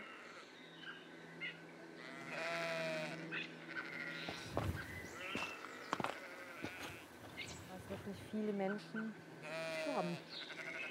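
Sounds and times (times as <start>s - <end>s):
sheep bleating inside a house: 0.0s - 0.5s, 2.0s - 7.1s, 9.4s - 10.8s
speech: 8.1s - 9.3s, 10.0s - 10.6s.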